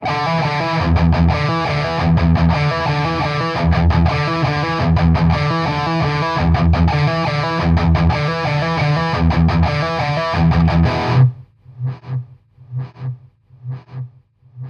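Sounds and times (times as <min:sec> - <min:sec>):
hard rock electric guitar in E: 0:00.0 - 0:11.3.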